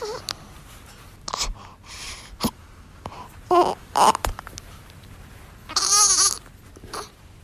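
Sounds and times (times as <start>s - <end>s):
four-day-old newborn baby squeaking, grunting and crying: 0.0s - 0.6s, 1.2s - 4.7s, 5.6s - 7.2s
low hiss: 0.0s - 7.4s.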